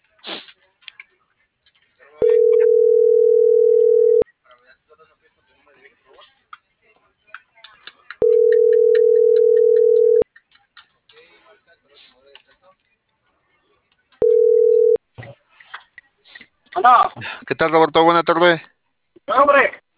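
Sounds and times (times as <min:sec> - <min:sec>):
faint chatter: 0:00.0 - 0:17.4
telephone line tone of a call failing to connect: 0:02.2 - 0:04.2, 0:08.2 - 0:10.2, 0:14.2 - 0:15.0
speech: 0:17.5 - 0:18.8.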